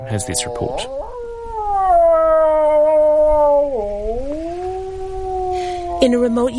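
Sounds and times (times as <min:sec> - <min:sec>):
speech: 0:00.0 - 0:01.1, 0:06.0 - 0:06.5
wildlife expert imitating a wolf howl in a traditional hut in Ukraine: 0:00.0 - 0:01.1
faint hum: 0:00.0 - 0:06.5.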